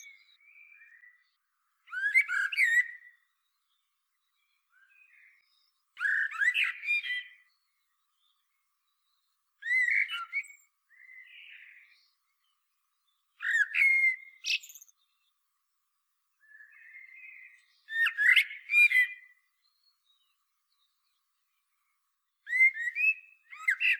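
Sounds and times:
Common blackbird Turdus merula singing clear whistles and twittery notes: 0.0 - 1.3, 1.9 - 3.3, 4.7 - 7.6, 9.6 - 12.0, 13.4 - 15.0, 16.4 - 19.4, 22.4 - 23.9.

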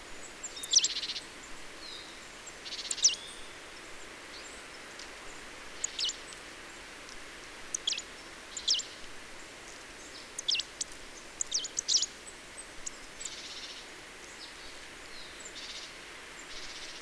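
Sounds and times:
background hiss: 0.0 - 17.0
Marsh Tit Poecile palustris calls: 5.8 - 6.3, 7.7 - 9.0, 10.2 - 12.2.

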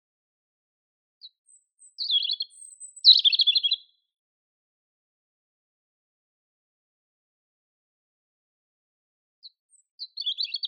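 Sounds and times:
European robin song of thin whistles and high twittering trills: 1.2 - 4.1, 9.4 - 10.6.

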